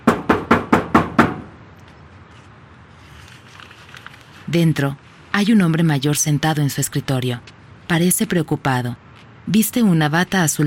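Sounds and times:
knocking on a small blue door: 0.0 - 1.5
speech: 4.5 - 10.6.

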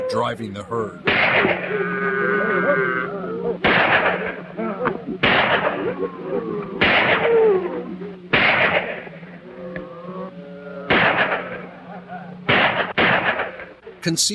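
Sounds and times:
man narrating: 0.0 - 1.1, 14.0 - 14.3
speech: 0.1 - 9.0, 14.0 - 14.3
rifle gunfire from inside a cabin: 1.1 - 1.8, 3.6 - 4.4, 5.2 - 5.9, 6.8 - 7.6, 8.3 - 9.3, 10.9 - 11.7, 12.4 - 13.8.

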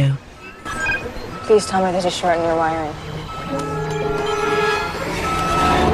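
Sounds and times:
faint tonal beeping: 0.0 - 5.9
reversing lorry engine droning: 0.0 - 5.9
rumbling traffic-like texture: 0.0 - 5.9
speech: 1.5 - 3.7.

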